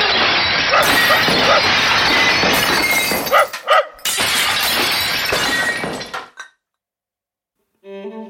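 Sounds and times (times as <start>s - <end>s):
plates and glass smashing against a wall: 0.2s - 6.6s.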